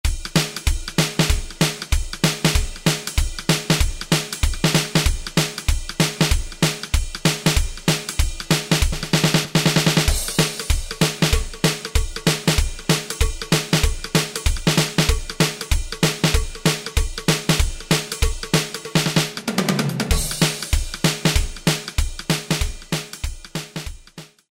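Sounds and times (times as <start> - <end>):
1950s rock and roll drum machine beat: 0.0 - 24.5.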